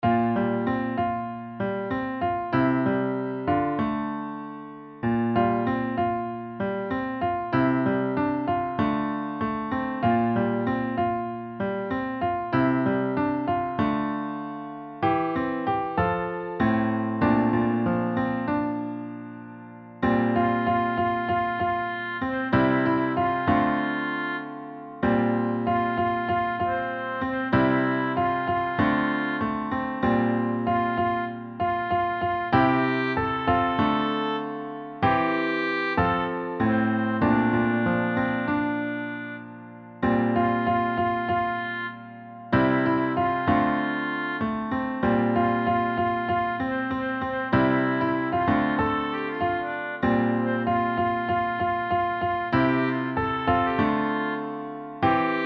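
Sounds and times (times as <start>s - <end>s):
piano melody: 0.0s - 55.4s.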